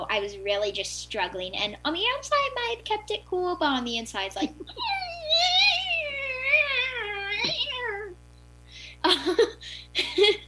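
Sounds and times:
speech: 0:00.1 - 0:05.6, 0:09.0 - 0:10.4
short burst of laughter: 0:04.4 - 0:04.9, 0:09.0 - 0:10.4
person yowling imitating a cat in pain: 0:04.7 - 0:08.2.

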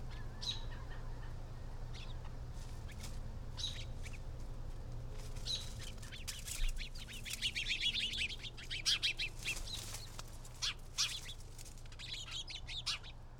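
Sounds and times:
birds chirping and singing outdoors: 0:00.0 - 0:04.4, 0:05.0 - 0:13.3.

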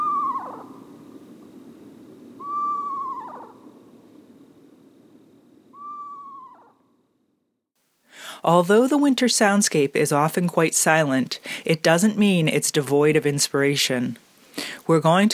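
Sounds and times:
Eastern Screech Owl quavering descending whistle: 0:00.0 - 0:01.0, 0:02.4 - 0:03.8, 0:05.7 - 0:07.0
speech: 0:08.4 - 0:15.3.

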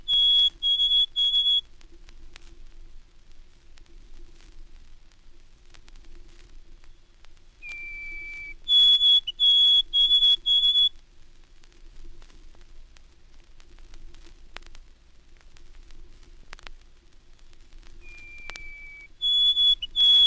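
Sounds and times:
White-throated Sparrow singing: 0:00.0 - 0:01.6, 0:07.6 - 0:10.9, 0:18.0 - 0:20.2.

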